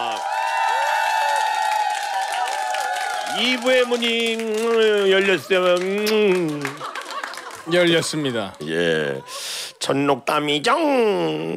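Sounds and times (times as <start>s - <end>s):
studio audience cheering: 0.0s - 9.4s
speech: 3.4s - 6.9s, 7.7s - 11.5s
laughter: 4.9s - 9.6s.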